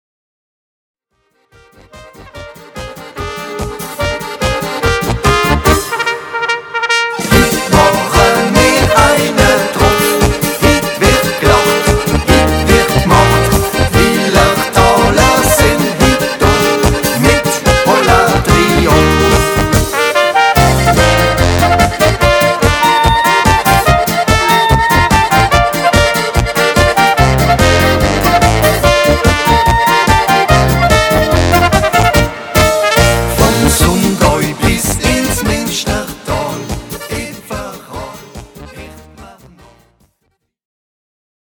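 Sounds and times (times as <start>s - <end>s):
Slovenian peasant dance music: 1.3s - 40.0s.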